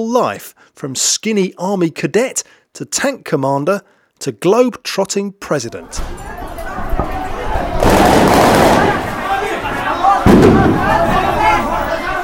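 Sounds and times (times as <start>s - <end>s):
speech: 0.0s - 6.3s
crowd shouting: 5.8s - 12.2s
explosion: 7.8s - 9.2s, 10.2s - 11.2s
gunshots: 7.8s - 9.4s, 10.2s - 11.1s.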